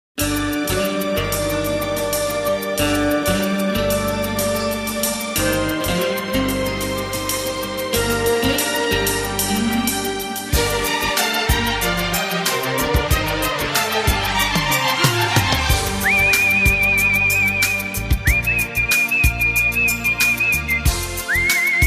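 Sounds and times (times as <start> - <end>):
guitar: 0.2 - 21.8
whistle: 15.8 - 21.8.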